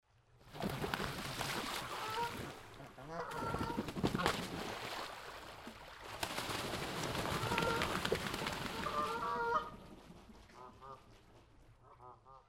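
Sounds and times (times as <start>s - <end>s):
geese flapping around: 0.5s - 2.5s, 3.2s - 5.1s, 6.0s - 11.6s
geese flying by: 0.6s - 4.4s, 6.2s - 12.4s
geese fighting: 1.7s - 4.4s, 6.8s - 9.9s, 10.5s - 11.1s.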